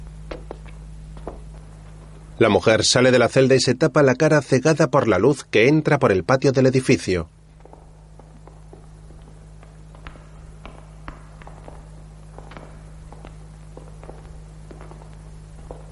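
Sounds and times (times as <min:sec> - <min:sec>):
uneven footsteps of a woman walking with difficulty: 0:00.0 - 0:02.4, 0:07.4 - 0:15.9
low steady hum: 0:00.0 - 0:15.9
speech: 0:02.4 - 0:07.4.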